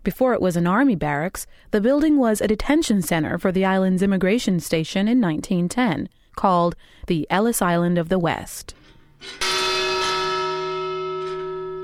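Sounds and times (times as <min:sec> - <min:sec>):
speech: 0:00.0 - 0:09.5
large bell ringing to announce an arriving ship: 0:09.2 - 0:11.8.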